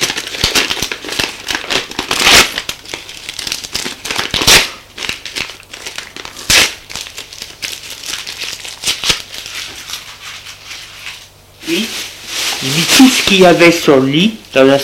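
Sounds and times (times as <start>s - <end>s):
identity card being torn into small pieces: 0.0s - 10.2s
speech: 13.3s - 14.8s.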